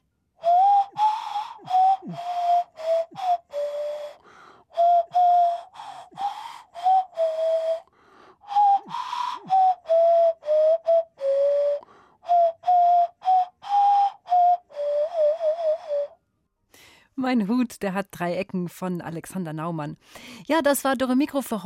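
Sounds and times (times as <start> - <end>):
nose flute playing a simple tune: 0.0 - 16.2
speech: 17.4 - 21.6.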